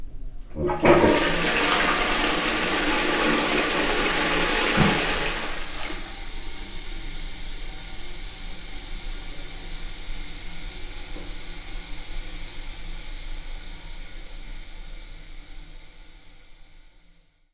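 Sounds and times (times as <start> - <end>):
short flush: 0.4 - 6.8.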